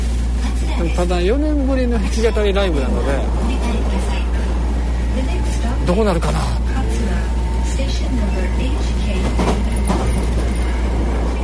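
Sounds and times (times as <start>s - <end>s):
electric Hankyu line train rumbling during a ride: 0.0s - 11.4s
people talking indistinctly: 0.4s - 10.4s
speech: 0.8s - 3.8s, 5.2s - 6.6s.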